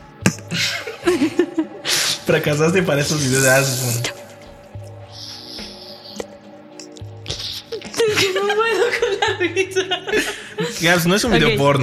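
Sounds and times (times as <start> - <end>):
laughter: 0.2 - 3.6, 5.2 - 11.8
speech: 0.4 - 1.4, 2.3 - 4.2, 10.8 - 11.8
wet mouth sounds of melting chocolate savored on tongue: 3.4 - 8.1.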